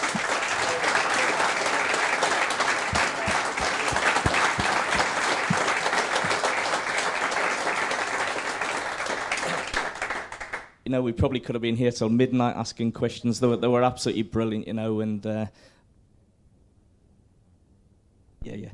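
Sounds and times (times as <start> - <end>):
room full of people applauding: 0.0 - 10.7
speech: 10.9 - 15.7.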